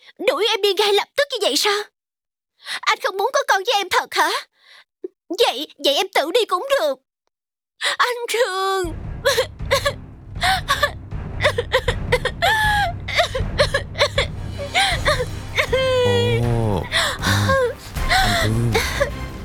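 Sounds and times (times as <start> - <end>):
speech: 0.1 - 1.9, 2.6 - 4.5, 5.3 - 7.0, 7.8 - 10.9
woman crying and whimpering: 9.2 - 19.2.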